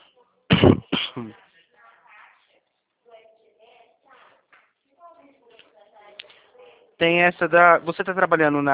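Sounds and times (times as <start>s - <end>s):
harsh coughs: 0.5s - 1.4s
speech: 7.0s - 8.7s.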